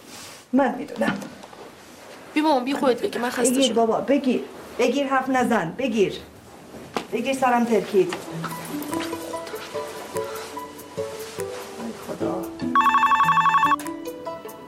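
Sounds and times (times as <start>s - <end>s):
speech: 0.5s - 1.4s, 2.4s - 6.3s, 7.1s - 8.6s
telephone ringing unanswered: 12.8s - 13.9s.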